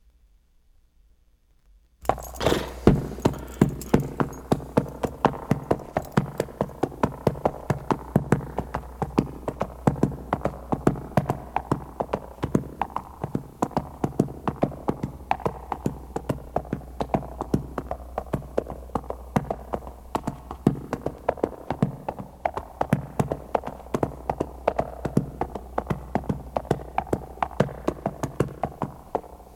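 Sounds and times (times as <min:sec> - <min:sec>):
horse walking: 0:02.0 - 0:29.5
horse whinnying: 0:02.2 - 0:04.2.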